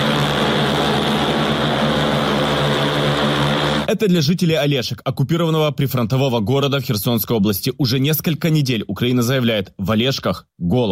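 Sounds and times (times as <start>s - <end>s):
cargo drone propellers whining during takeoff and flight over Kherson Ukraine: 0.0s - 3.9s
speech: 3.9s - 10.9s.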